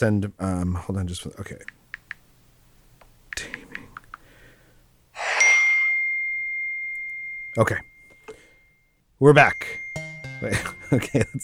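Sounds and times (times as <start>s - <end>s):
speech: 0.0s - 1.8s, 7.6s - 7.9s, 9.2s - 9.8s, 10.4s - 11.4s
mobile phone notification ding: 5.2s - 7.6s.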